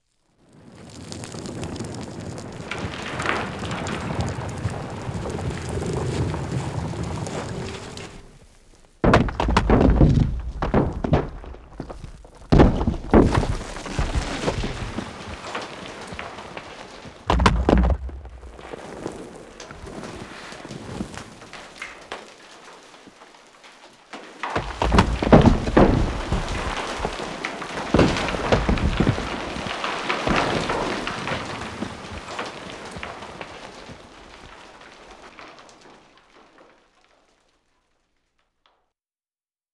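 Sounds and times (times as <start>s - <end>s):
landslide with rocks: 0.0s - 38.8s.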